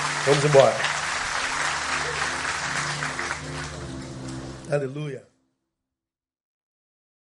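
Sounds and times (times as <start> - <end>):
audience applauding during a church service: 0.0 - 4.7
speech: 0.2 - 0.9, 4.7 - 5.3.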